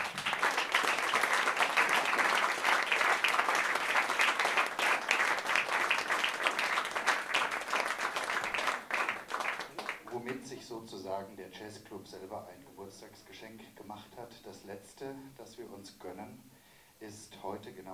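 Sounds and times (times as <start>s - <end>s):
audience applause in a jazz club: 0.0s - 10.6s
speech: 11.1s - 17.9s.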